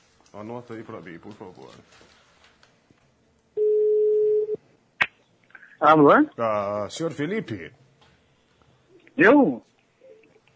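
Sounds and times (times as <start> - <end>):
speech: 0.4 - 2.2, 5.8 - 7.8, 9.2 - 9.7
telephone tone while placing a call: 3.6 - 4.6.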